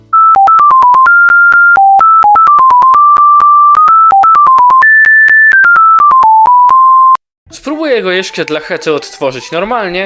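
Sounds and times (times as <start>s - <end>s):
old-school near-monophonic phone ringtone: 0.1s - 7.2s
speech: 7.9s - 10.0s.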